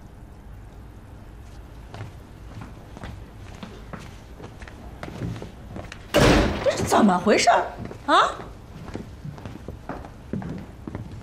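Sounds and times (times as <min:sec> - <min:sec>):
shuffling: 0:01.3 - 0:11.2
door slamming shut: 0:06.1 - 0:07.0
speech: 0:06.9 - 0:08.4.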